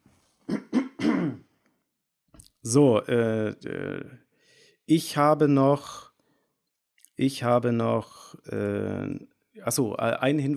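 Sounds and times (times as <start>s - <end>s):
person clearing throat: 0.5s - 1.4s
speech: 2.6s - 4.2s, 4.9s - 6.1s, 7.2s - 10.5s.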